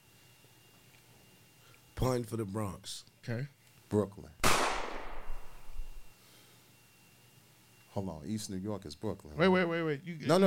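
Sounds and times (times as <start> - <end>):
speech: 2.0 - 4.4, 8.0 - 10.4
gunshot sound effect with rumbling echo: 4.4 - 5.8.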